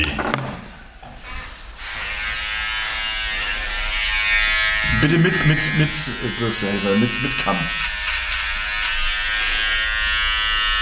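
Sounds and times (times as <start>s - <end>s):
small electric trimmer buzzing while trimming eyebrows: 1.8s - 10.8s
speech: 5.0s - 7.9s.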